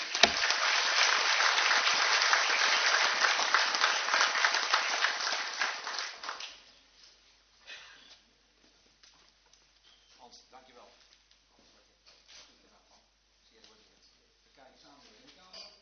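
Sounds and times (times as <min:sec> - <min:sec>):
room full of people applauding: 0:00.0 - 0:06.7.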